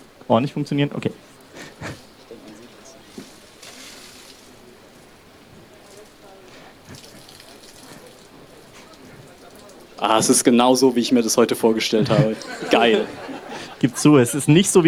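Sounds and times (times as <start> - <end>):
water dripping: 0.0 - 14.0
speech: 0.3 - 2.0, 10.0 - 14.8
water being poured out: 1.3 - 10.6
laughter: 1.5 - 4.0, 6.4 - 14.8.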